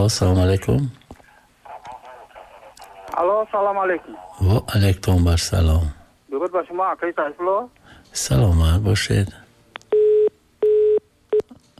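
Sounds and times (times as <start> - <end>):
speech: 0.0 - 1.0, 3.2 - 9.4
telephone tone after a call-in line is disconnected: 9.9 - 11.4.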